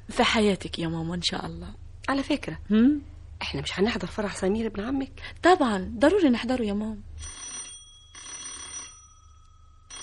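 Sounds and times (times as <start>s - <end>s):
speech: 0.2s - 7.4s
telephone bell ringing in a home: 7.2s - 10.0s.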